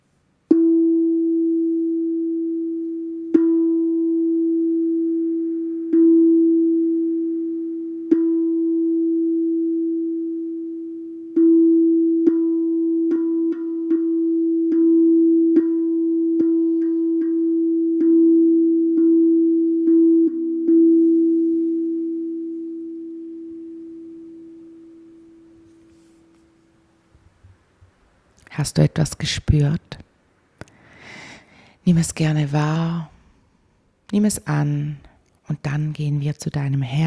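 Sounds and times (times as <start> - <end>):
sustained musical tone on the note E: 0.5 - 26.9
speech: 28.6 - 30.0, 31.9 - 33.1, 34.1 - 37.0.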